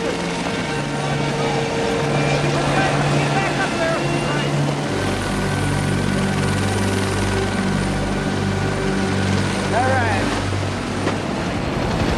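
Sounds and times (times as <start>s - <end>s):
faint voices: 0.0s - 5.2s
helicopter engines whining during takeoff: 0.0s - 12.1s.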